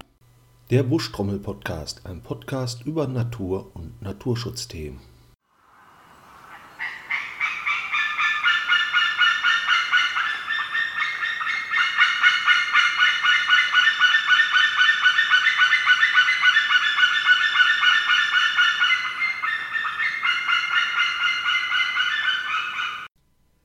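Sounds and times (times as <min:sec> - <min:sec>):
speech: 0:00.7 - 0:05.1
white-tailed eagle calling: 0:06.5 - 0:23.1.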